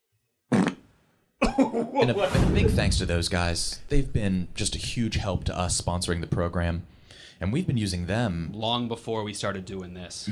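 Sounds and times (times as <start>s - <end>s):
fart sound effect: 0.5s - 0.8s
speech: 1.6s - 10.3s.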